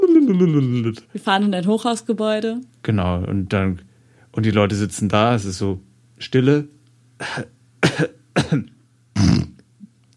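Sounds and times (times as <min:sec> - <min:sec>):
faint low hum: 0:00.0 - 0:10.1
speech: 0:00.3 - 0:09.5
person coughing: 0:07.2 - 0:09.6.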